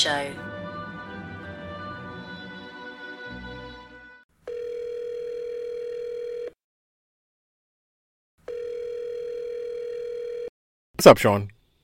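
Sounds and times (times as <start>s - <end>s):
speech: 0.0s - 0.5s, 11.0s - 11.6s
music: 0.0s - 4.2s
long steady buzzing phone ringback tones: 4.5s - 6.6s, 8.5s - 10.5s.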